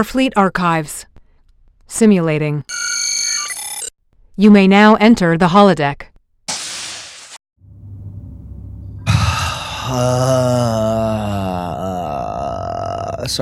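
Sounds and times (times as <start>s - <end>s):
speech: 0.0s - 1.1s, 1.9s - 3.0s, 4.4s - 6.1s, 9.9s - 11.5s, 13.3s - 13.4s
low hum: 7.6s - 11.2s
loud breathy exhale: 9.0s - 11.6s
sustained wavering groan-like tone: 9.0s - 13.2s.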